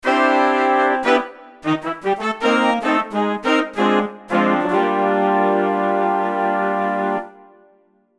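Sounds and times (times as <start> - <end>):
big band playing: 0.0 - 7.2.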